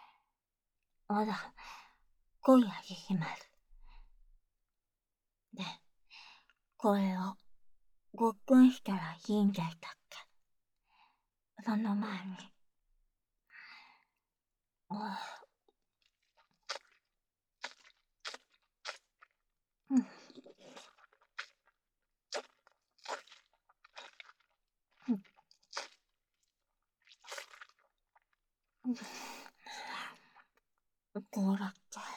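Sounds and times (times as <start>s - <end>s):
speech: 1.1s - 1.8s, 2.4s - 3.5s, 5.6s - 5.8s, 6.8s - 7.4s, 8.2s - 10.3s, 11.6s - 12.5s, 14.9s - 15.4s, 19.9s - 20.2s, 25.1s - 25.3s, 28.9s - 29.4s, 31.2s - 32.1s
chewing crunchy green plant food: 16.0s - 19.4s, 20.0s - 28.4s
wet mouth sounds: 16.2s - 19.4s, 20.0s - 26.2s, 27.1s - 28.3s.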